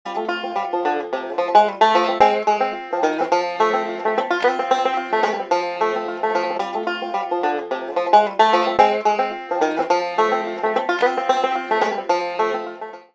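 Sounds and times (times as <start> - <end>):
bluegrass banjo ringtone: 0.1 - 13.1.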